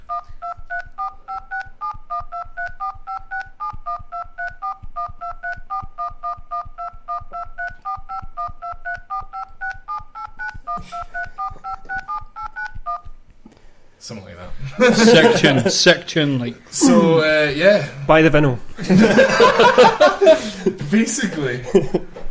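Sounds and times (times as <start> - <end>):
phone keypad dialing tones played as melody: 0.0 - 13.3
regular clicking beat: 0.0 - 13.7
laughter: 14.6 - 15.9, 18.8 - 20.8, 21.6 - 22.2
speech: 14.8 - 22.0.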